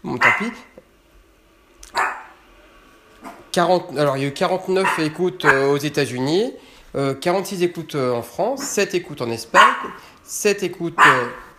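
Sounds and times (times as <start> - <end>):
speech: 0.0 - 0.8, 3.6 - 11.4
dog barking indoors: 0.2 - 0.7, 1.9 - 2.4, 4.8 - 5.8, 9.5 - 10.0, 11.0 - 11.5.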